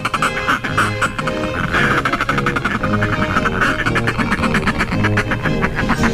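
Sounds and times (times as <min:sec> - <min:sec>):
northern fulmar calls: 0:00.0 - 0:06.1.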